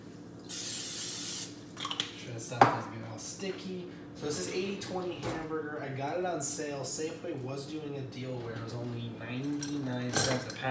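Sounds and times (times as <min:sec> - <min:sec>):
aerosol spray hissing: 0:00.5 - 0:01.5
speech: 0:02.5 - 0:10.6.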